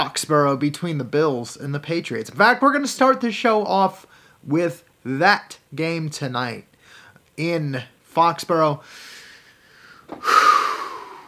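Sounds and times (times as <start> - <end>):
speech: 0.0 - 6.7, 7.4 - 9.1, 10.1 - 10.5
deep breath drawn in for dramatic effect: 4.1 - 4.4, 6.8 - 7.2, 8.8 - 11.2.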